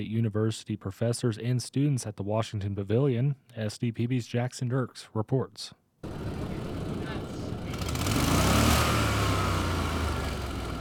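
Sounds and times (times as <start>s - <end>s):
speech: 0.0s - 6.3s
student-built engine revving: 6.0s - 10.7s.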